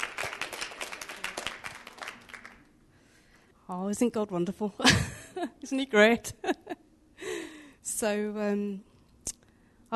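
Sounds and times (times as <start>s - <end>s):
small group applauding in a room: 0.0s - 2.7s
speech: 3.7s - 6.8s, 8.0s - 8.9s.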